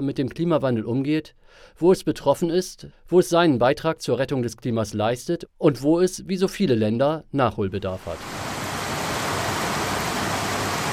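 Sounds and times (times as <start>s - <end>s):
speech: 0.0s - 8.4s
steady rain falling in Costa Rica: 8.1s - 10.9s.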